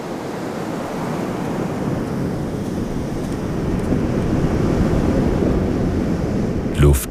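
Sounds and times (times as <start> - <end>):
waves washing onto sandy beach: 0.0 - 6.9
wind rumbling: 1.5 - 7.0.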